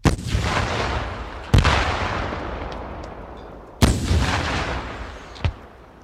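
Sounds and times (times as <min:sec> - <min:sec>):
bazooka rockets exploding into buildings: 0:00.0 - 0:06.0.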